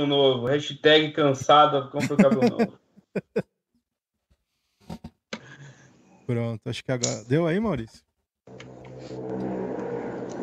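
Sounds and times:
speech: 0.0s - 2.8s, 6.3s - 8.1s
laughter: 2.0s - 3.4s
motorcycle engine starting and revving: 8.5s - 10.4s.

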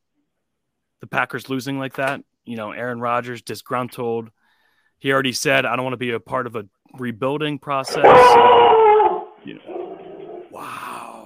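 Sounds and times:
speech: 1.0s - 4.4s, 5.0s - 8.8s, 9.4s - 9.7s
dog barking: 7.9s - 10.5s.

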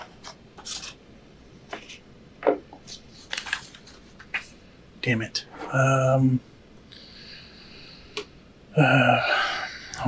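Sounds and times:
crisp paper sheets rustling and crinkling while shuffled and flipped: 0.0s - 1.0s, 2.9s - 4.6s
speech: 5.0s - 6.5s, 8.8s - 9.3s.

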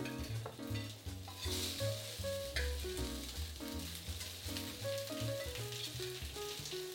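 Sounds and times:
tuna burger patties frying in coconut oil in a pan over medium heat: 0.0s - 6.9s.

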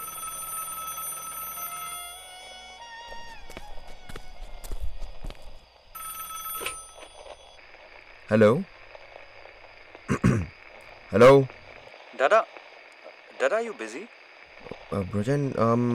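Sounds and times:
home telephone bell ringing: 0.0s - 4.4s, 5.9s - 7.6s
speech: 8.3s - 8.8s, 11.1s - 11.6s, 12.2s - 12.5s, 13.4s - 14.2s, 14.9s - 15.9s.

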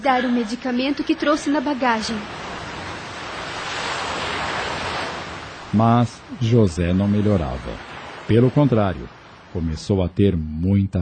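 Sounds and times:
speech: 0.0s - 2.5s, 5.7s - 11.0s
ocean waves: 0.0s - 10.3s
wind: 0.0s - 11.0s.

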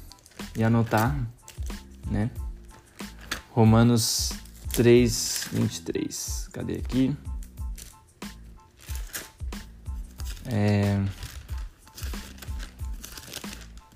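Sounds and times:
thin Bible pages being flipped quickly: 0.1s - 1.9s, 2.8s - 3.5s, 4.3s - 5.9s, 7.4s - 8.0s, 8.7s - 13.9s
speech: 0.6s - 1.4s, 2.0s - 2.4s, 3.6s - 7.3s, 10.5s - 11.2s.

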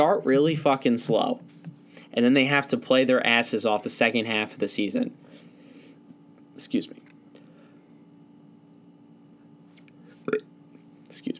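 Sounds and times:
speech: 0.0s - 5.4s, 6.6s - 7.0s
person burping: 10.3s - 10.5s.

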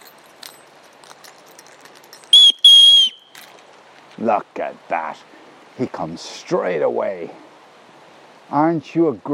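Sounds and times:
whistle blown to call a dog: 2.3s - 3.4s
speech: 4.2s - 7.4s, 8.5s - 9.3s.

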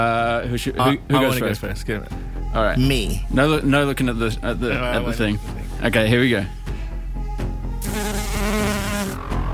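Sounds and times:
speech: 0.0s - 6.6s
bee buzzing: 7.8s - 9.4s.

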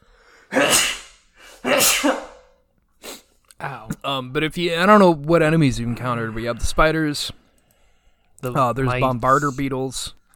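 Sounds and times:
loud explosive sneezes: 0.5s - 3.3s
speech: 1.8s - 2.3s, 3.6s - 7.4s, 8.4s - 10.2s.

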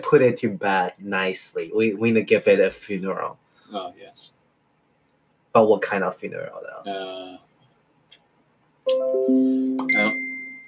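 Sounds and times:
speech: 0.0s - 4.4s, 5.5s - 7.4s, 8.8s - 10.3s
bright electronic notification chime with ascending tones: 8.9s - 10.6s.

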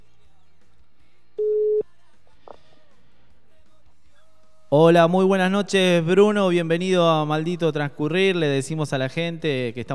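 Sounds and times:
telephone tone as a call is placed: 1.4s - 1.8s
speech: 4.7s - 9.9s.

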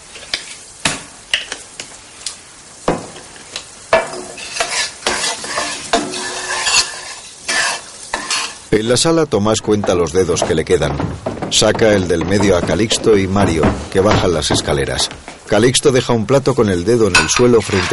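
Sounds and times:
something sizzling in a hot frying pan: 0.0s - 8.9s
stirring and scraping clatters in a frying pan: 4.0s - 8.7s, 9.8s - 15.1s, 17.1s - 17.9s
speech: 8.8s - 17.9s.

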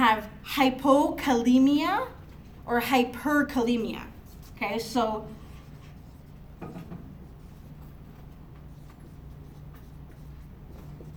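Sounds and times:
speech: 0.0s - 5.4s
scratching of writing by hand: 5.4s - 11.1s.

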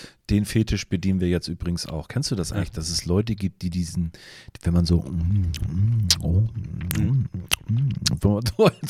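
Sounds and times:
speech: 0.3s - 8.8s
murmured hummed vocal sounds: 5.0s - 8.3s
wet lip smacking: 5.4s - 8.3s.

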